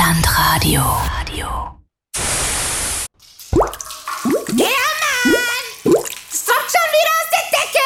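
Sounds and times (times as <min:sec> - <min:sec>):
speech: 0:00.7 - 0:01.2
hissing static: 0:02.2 - 0:03.1
water dripping from a leak: 0:03.2 - 0:07.8.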